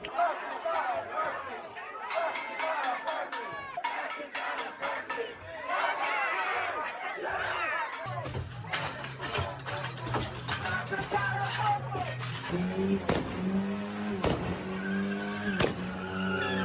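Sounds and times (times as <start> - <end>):
faint crowd noise: 0.0 - 12.5
car engine droning and revving: 12.0 - 16.6
car engine backfiring with loud sharp pops: 12.3 - 14.8, 15.4 - 16.0.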